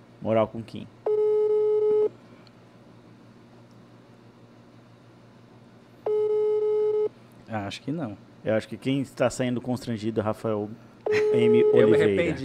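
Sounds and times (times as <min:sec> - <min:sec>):
speech: 0:00.2 - 0:01.0, 0:07.5 - 0:12.4
telephone line tones as a call is placed: 0:01.1 - 0:02.1, 0:06.0 - 0:07.1, 0:11.1 - 0:12.2.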